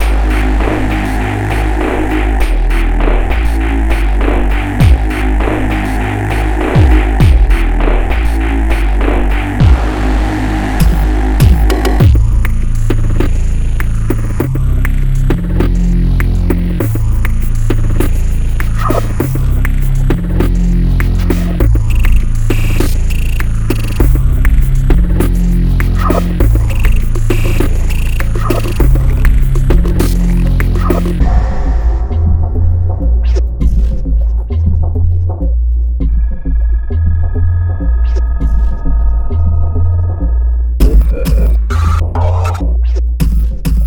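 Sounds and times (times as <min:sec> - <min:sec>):
experimental ambient samples: 0:00.0 - 0:43.0.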